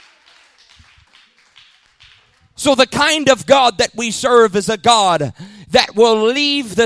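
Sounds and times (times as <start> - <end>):
audience clapping hands: 0.0 - 2.7
speech: 2.6 - 6.8.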